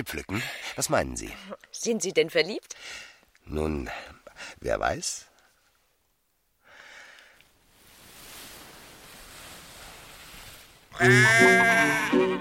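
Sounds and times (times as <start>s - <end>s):
speech: 0.0s - 5.3s, 11.0s - 12.3s
sheep bleating at a livestock show on a meadow: 10.9s - 12.3s.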